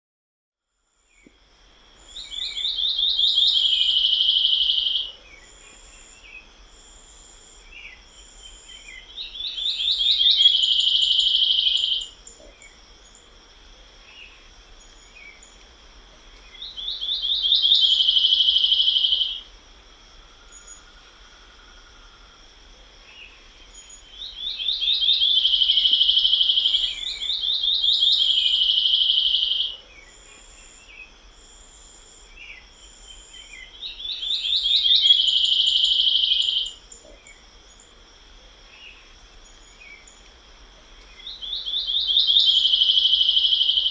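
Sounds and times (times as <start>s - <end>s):
policia do mato bird singing: 2.0s - 13.2s, 16.4s - 19.5s, 23.1s - 37.8s, 41.0s - 43.9s.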